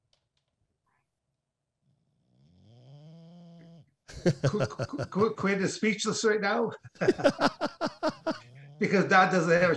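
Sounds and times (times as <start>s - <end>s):
dog snore-like groaning breath: 1.8s - 4.0s
laughter: 4.1s - 5.8s, 6.8s - 9.7s
speech: 4.2s - 7.5s, 8.3s - 9.7s.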